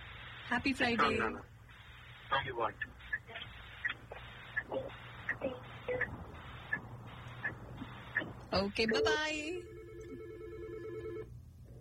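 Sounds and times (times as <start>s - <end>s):
speech: 0.5s - 1.6s, 2.3s - 3.0s, 4.7s - 6.3s, 8.5s - 9.8s
telephone ringing with an incoming call: 8.9s - 11.3s.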